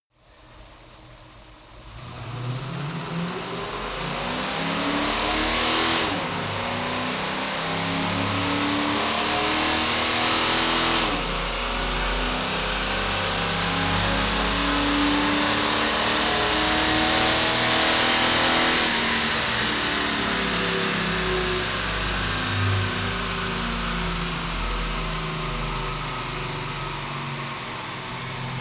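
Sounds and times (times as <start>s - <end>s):
Camaro car engine accelerating decelerating and shifting gears: 0.3s - 28.6s.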